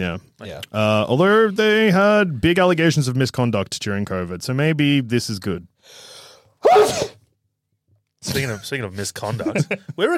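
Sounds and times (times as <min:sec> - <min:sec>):
speech: 0:00.0 - 0:07.2, 0:08.2 - 0:10.1
person sneezing: 0:06.6 - 0:07.2.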